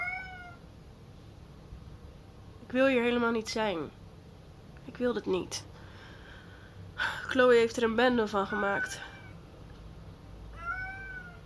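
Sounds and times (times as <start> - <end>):
cat meowing: 0.0 - 0.6, 8.5 - 9.4, 10.5 - 11.4
quiet low hum: 0.0 - 11.4
speech: 2.7 - 4.0, 5.0 - 5.7, 7.0 - 9.1.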